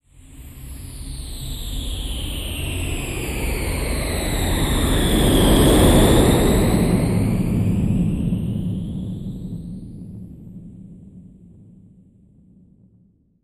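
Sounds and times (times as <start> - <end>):
airplane taking off: 2.6 - 11.9.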